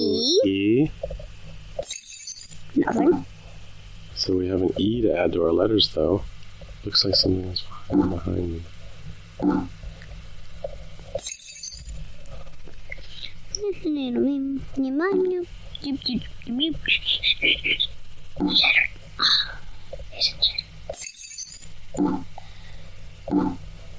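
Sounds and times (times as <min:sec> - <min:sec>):
speech: 0:00.2 - 0:01.2, 0:04.2 - 0:08.8, 0:09.4 - 0:09.8, 0:13.6 - 0:19.6, 0:20.2 - 0:20.6, 0:22.0 - 0:22.3, 0:23.3 - 0:23.6
glass lights being shattered in a game: 0:01.8 - 0:02.6, 0:11.2 - 0:11.9, 0:20.9 - 0:21.7
soft game sounds: 0:01.8 - 0:03.3, 0:11.2 - 0:11.9, 0:20.4 - 0:22.4, 0:23.3 - 0:23.7.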